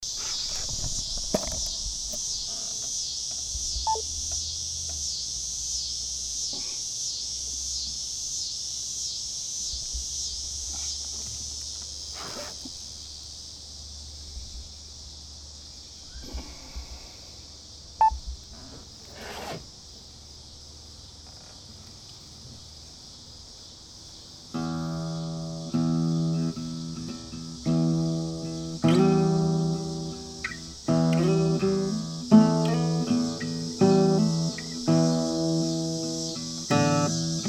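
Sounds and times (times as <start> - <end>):
cicadas: 0.0 - 37.4
blues music: 24.6 - 37.4.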